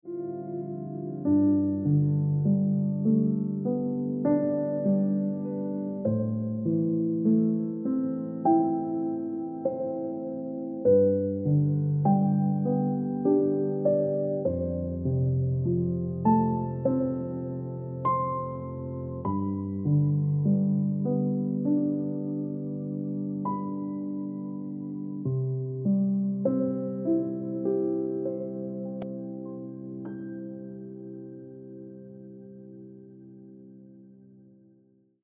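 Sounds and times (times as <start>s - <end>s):
piano ringtone music: 0.1s - 34.0s.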